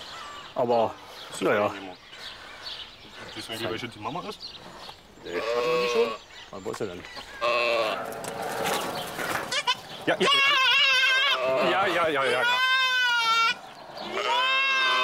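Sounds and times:
speech: 0:00.6 - 0:02.0, 0:03.4 - 0:08.3, 0:10.1 - 0:10.6, 0:11.5 - 0:12.7
young goat kid bleating for its mother: 0:05.3 - 0:06.2, 0:09.5 - 0:15.0.

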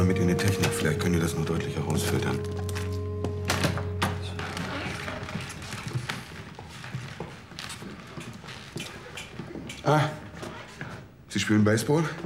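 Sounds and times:
speech: 0:00.0 - 0:02.9, 0:09.9 - 0:10.2, 0:11.4 - 0:12.2
tape hiss: 0:00.0 - 0:08.4.

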